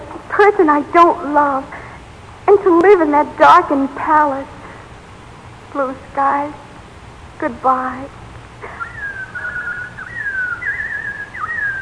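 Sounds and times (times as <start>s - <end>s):
steady hiss: 0.0s - 11.8s
speech: 0.4s - 1.8s, 2.5s - 4.6s, 5.7s - 6.6s, 7.4s - 8.2s
person whistling robin song: 8.6s - 11.8s.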